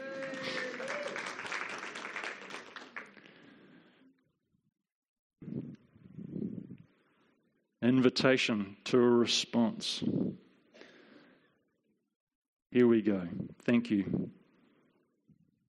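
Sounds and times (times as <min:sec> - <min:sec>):
audience clapping: 0:00.0 - 0:03.6
speech: 0:07.9 - 0:10.4, 0:12.7 - 0:14.4.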